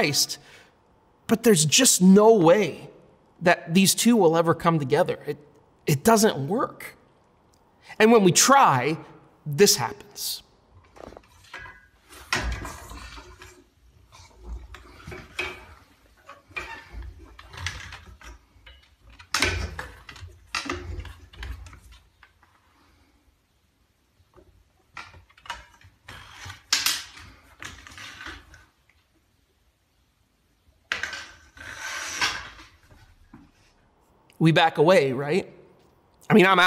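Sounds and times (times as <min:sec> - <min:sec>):
speech: 0:00.0 - 0:00.6, 0:01.3 - 0:07.0, 0:07.9 - 0:10.4, 0:34.4 - 0:35.6, 0:36.3 - 0:36.6
stick jamming and scraping against a wooden doorframe: 0:10.8 - 0:23.0, 0:25.0 - 0:28.7, 0:30.9 - 0:33.7.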